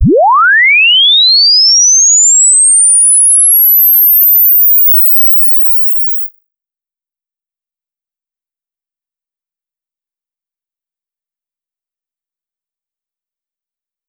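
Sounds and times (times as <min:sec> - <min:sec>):
stereo sweep tone: 0:00.0 - 0:06.3.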